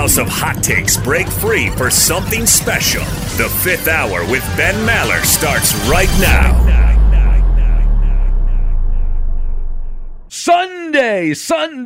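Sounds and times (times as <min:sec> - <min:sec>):
deep roaring engine rumble: 0:00.0 - 0:10.3
speech: 0:00.1 - 0:06.8, 0:10.5 - 0:11.8.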